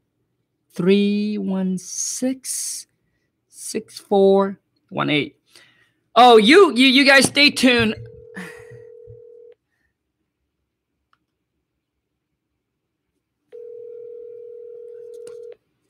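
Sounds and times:
speech: 0.7s - 2.9s, 3.6s - 5.6s, 6.2s - 8.5s
electronic ringback tones of an outgoing phone call: 7.9s - 9.5s, 13.6s - 15.5s.

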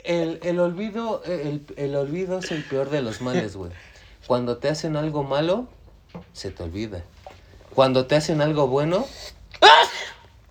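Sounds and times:
speech: 0.0s - 7.1s, 7.8s - 10.0s
man sneezing: 9.6s - 10.3s.

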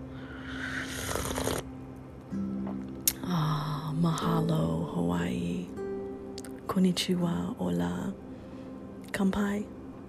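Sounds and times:
low steady hum: 0.0s - 10.0s
slurping sip of hot coffee: 0.6s - 1.7s
speech: 4.0s - 5.8s, 6.7s - 8.3s, 9.2s - 9.8s.

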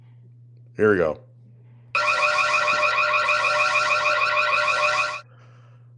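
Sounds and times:
low hum: 0.0s - 5.9s
speech: 0.8s - 1.3s
electronic crime alarm sound effect warbling: 2.0s - 5.2s.

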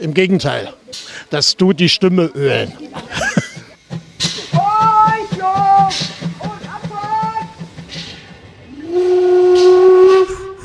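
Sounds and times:
speech: 0.0s - 3.4s
laughter: 2.4s - 4.6s
steam locomotive chuffing on the island railway at Binz on Rügen, Germany: 3.0s - 10.6s
steam locomotive whistle on the island railway at Binz on Rügen, Germany: 4.6s - 10.6s.

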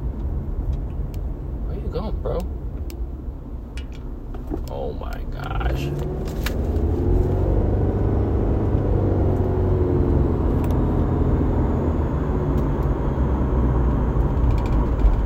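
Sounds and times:
car engine drone with thin sustained whine: 0.0s - 15.2s
speech: 2.0s - 2.6s, 4.9s - 6.4s.

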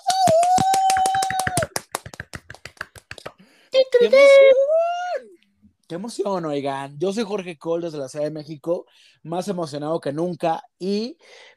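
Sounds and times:
small group applauding: 0.0s - 3.4s
speech: 4.0s - 4.6s, 5.9s - 11.5s.

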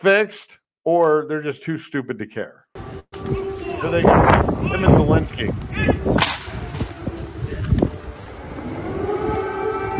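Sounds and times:
speech: 0.0s - 6.4s
air raid siren in Ukraine wailing: 3.1s - 5.0s, 6.0s - 9.9s.

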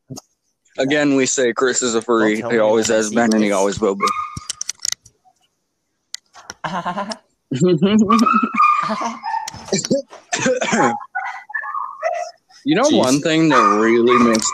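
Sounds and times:
laughter: 0.8s - 4.1s, 6.6s - 14.5s
speech: 0.8s - 4.3s, 6.7s - 11.1s, 12.6s - 14.5s
dog barking and yelping: 2.9s - 4.5s, 8.1s - 9.8s, 10.7s - 14.5s.

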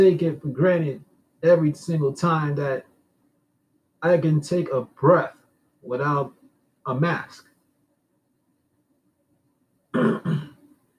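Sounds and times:
speech: 0.0s - 2.9s, 4.0s - 7.5s, 10.0s - 10.4s
person clearing throat into a microphone: 10.0s - 10.6s.

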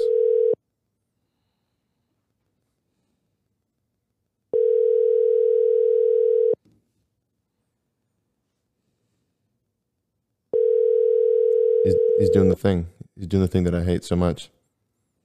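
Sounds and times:
outgoing phone call ringback tone: 0.0s - 0.6s, 4.5s - 6.6s, 10.5s - 12.5s
speech: 11.9s - 14.6s.

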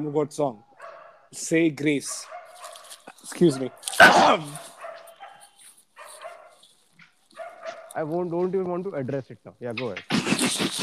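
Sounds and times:
speech: 0.0s - 0.7s, 1.3s - 2.4s, 3.2s - 4.7s, 8.0s - 10.8s
faint noise: 0.0s - 10.8s
dog barking: 0.7s - 1.3s, 2.0s - 6.7s, 7.4s - 8.1s.

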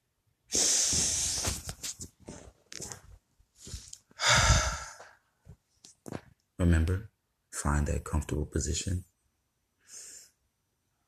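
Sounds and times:
deep breathing during a calming stress-relief exercise: 0.5s - 1.6s, 3.6s - 5.3s
speech: 6.6s - 9.1s.

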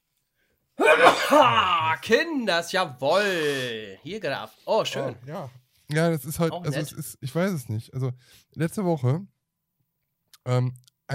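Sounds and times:
loud sneeze: 0.8s - 2.0s
speech: 1.3s - 9.3s, 10.4s - 11.1s.

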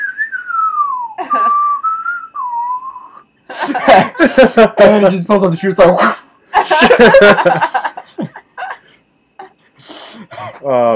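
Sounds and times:
person whistling a slow sliding western theme tune: 0.0s - 3.2s
laughter: 3.5s - 8.9s
speech: 3.7s - 6.2s, 7.0s - 7.8s.

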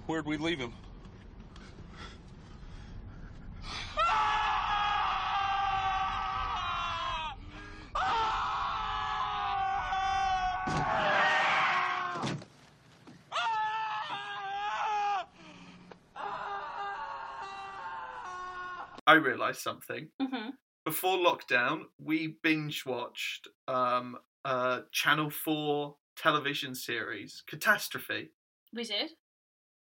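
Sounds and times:
speech: 0.1s - 0.9s, 19.1s - 29.2s
people screaming at the top of their lungs: 3.9s - 12.4s, 13.3s - 19.0s.

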